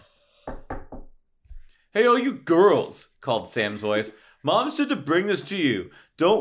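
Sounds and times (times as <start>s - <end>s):
firm knocks on a wooden door: 0.4s - 1.2s
speech: 2.0s - 6.3s.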